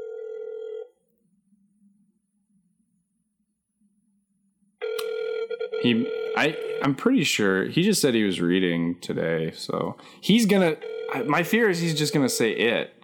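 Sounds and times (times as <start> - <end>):
outgoing call ringback tone: 0.0 - 1.0, 4.8 - 7.0, 10.8 - 11.8
speech: 5.8 - 13.0.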